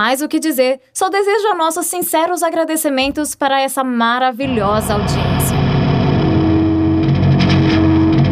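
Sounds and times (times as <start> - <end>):
speech: 0.0 - 5.8
crackling, warbling radio interference with distorted buzzing tones: 4.5 - 8.2.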